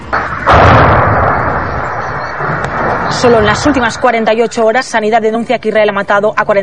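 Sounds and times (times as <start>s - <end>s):
Israeli artillery fire in southern Lebanon: 0.0s - 4.4s
loud heavy artillery blast with rumbling decay: 0.0s - 4.8s
speech: 3.2s - 6.6s.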